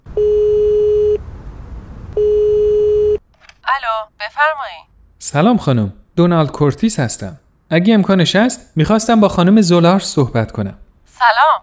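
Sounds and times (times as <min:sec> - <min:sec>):
telephone line ringback tone after dialing: 0:00.1 - 0:01.2, 0:02.2 - 0:03.2
speech: 0:03.8 - 0:11.6.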